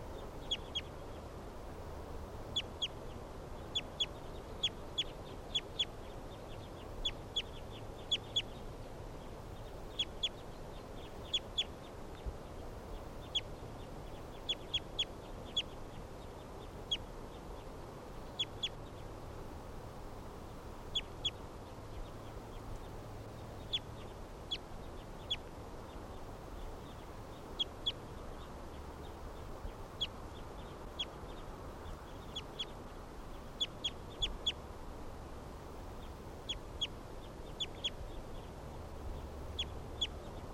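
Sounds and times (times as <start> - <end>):
captive birds giving sharp high calls: 0.0 - 1.3, 2.5 - 19.2, 20.4 - 34.6, 35.9 - 40.5
steady hiss: 0.0 - 40.5.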